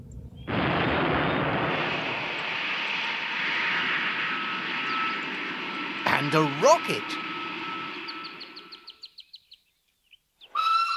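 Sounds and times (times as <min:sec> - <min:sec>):
airplane engine roaring: 0:00.5 - 0:09.1
faint whine: 0:00.5 - 0:09.2
speech: 0:06.2 - 0:07.3.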